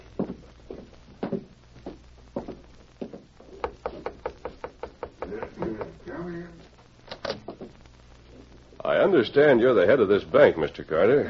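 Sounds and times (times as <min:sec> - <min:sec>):
knocking on a wooden door at the back of a bank: 0:03.6 - 0:06.0
speech: 0:09.0 - 0:11.2.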